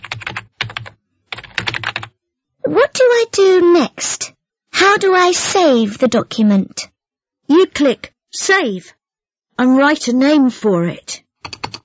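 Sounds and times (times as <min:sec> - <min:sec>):
typing homework on a computer keyboard: 0:00.0 - 0:02.1, 0:11.4 - 0:11.8
speech: 0:02.7 - 0:04.2, 0:05.0 - 0:06.9, 0:07.5 - 0:09.0, 0:09.6 - 0:11.2.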